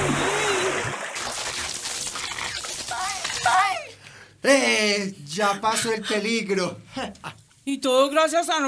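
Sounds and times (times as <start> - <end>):
water thrown splashing onto electrical fire: 0.0 - 3.6
sizzling crackling of doused electrical fire: 1.0 - 3.7
people shouting excitedly: 2.9 - 4.0
speech: 4.4 - 8.6.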